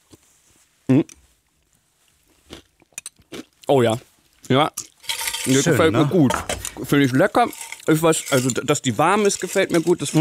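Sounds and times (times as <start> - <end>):
speech: 0.9 - 1.2, 3.7 - 10.1
crunchy croutons crunching in warm pea soup with cream: 2.1 - 5.8, 6.6 - 10.1.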